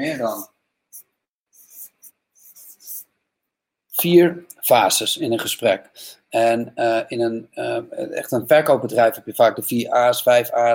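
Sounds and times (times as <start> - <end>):
speech: 0.0 - 1.0, 4.0 - 10.7
pen sketching a picture on paper: 1.5 - 3.1.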